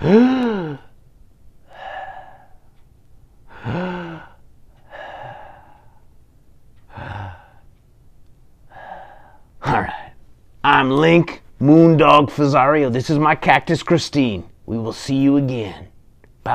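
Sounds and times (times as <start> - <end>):
speech: 0.0 - 0.4, 10.9 - 15.9
big deep breaths with voiced gasping sighs: 1.6 - 2.8, 3.4 - 6.1, 6.8 - 7.8, 8.7 - 10.2.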